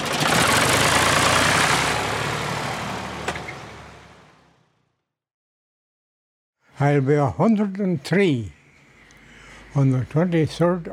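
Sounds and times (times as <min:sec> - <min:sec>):
small car engine idling: 0:00.0 - 0:04.3
speech: 0:06.8 - 0:08.6, 0:09.8 - 0:10.9.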